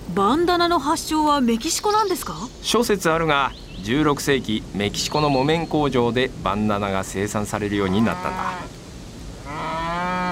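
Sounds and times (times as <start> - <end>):
speech: 0.2 - 8.8
cow mooing while being led: 7.8 - 8.7, 9.4 - 10.3.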